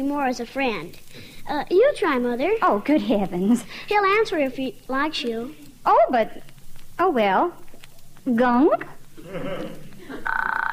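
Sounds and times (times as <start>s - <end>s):
speech: 0.0s - 7.6s, 8.2s - 10.4s
frog croaking with a rapid buzzing rattle: 9.2s - 10.7s
low throaty groan: 9.2s - 10.7s.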